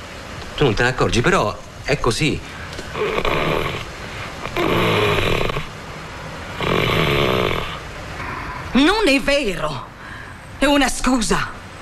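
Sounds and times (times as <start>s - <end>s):
speech: 0.6s - 3.8s, 8.8s - 9.9s, 10.6s - 11.6s
person imitating the snoring-like rattle of falling asleep on the back: 2.9s - 5.7s, 6.6s - 8.6s.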